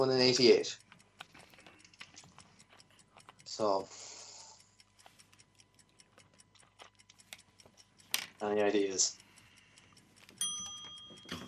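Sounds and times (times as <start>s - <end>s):
speech: 0.0s - 0.8s, 3.6s - 4.0s, 8.4s - 9.2s
quiz bell rung by accident during a quiz: 10.4s - 11.4s.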